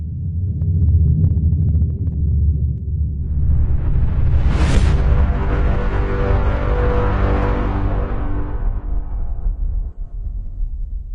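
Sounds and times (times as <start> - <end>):
deep throbbing thrum: 0.0 - 11.1
loud booming burst: 3.2 - 10.2.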